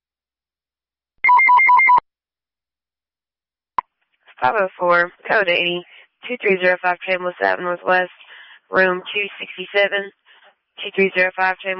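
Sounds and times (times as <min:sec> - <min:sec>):
electronic telephone ring for a phone call: 0:01.2 - 0:02.0
speech: 0:04.4 - 0:10.2, 0:10.8 - 0:11.7.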